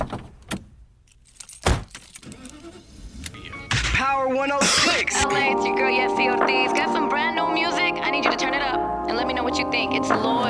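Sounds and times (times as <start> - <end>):
keys jingling: 1.0 - 3.8
car engine starting up with a low rumble: 1.9 - 10.4
speech: 4.1 - 10.4.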